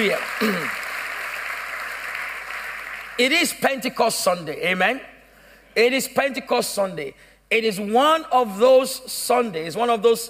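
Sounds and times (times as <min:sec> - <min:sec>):
speech: 0:00.0 - 0:00.8, 0:03.2 - 0:05.1, 0:05.8 - 0:10.2
audience applauding: 0:00.0 - 0:03.2.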